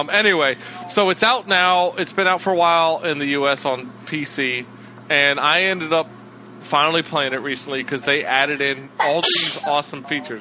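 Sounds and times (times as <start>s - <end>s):
speech: 0.0s - 10.3s
person sneezing: 9.0s - 9.7s.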